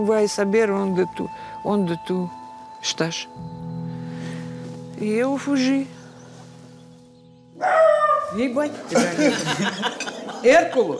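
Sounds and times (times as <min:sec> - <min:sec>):
speech: 0:00.0 - 0:03.5, 0:05.0 - 0:06.0, 0:07.6 - 0:10.9
dog barking loudly: 0:07.6 - 0:08.3
laughter: 0:08.9 - 0:10.9.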